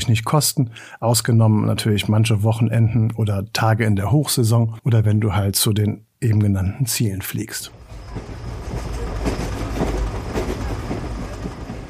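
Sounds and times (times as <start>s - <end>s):
speech: 0.1s - 8.3s
train wheels clicking over track joints: 7.7s - 11.8s.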